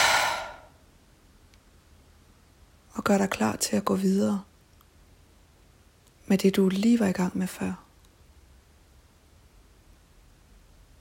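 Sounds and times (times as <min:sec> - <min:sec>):
breathy exhale: 0:00.0 - 0:00.7
speech: 0:03.0 - 0:04.5, 0:06.3 - 0:07.8.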